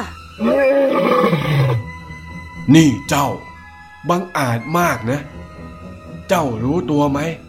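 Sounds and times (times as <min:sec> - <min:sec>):
speech: 0:00.0 - 0:01.0, 0:02.7 - 0:05.5, 0:06.3 - 0:07.4
lion roaring: 0:00.4 - 0:01.8.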